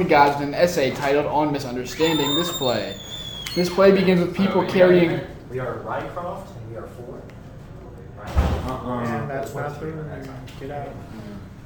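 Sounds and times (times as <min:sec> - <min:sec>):
speech: 0:00.0 - 0:07.3, 0:08.2 - 0:11.4
heavy door slamming shut: 0:08.3 - 0:08.8.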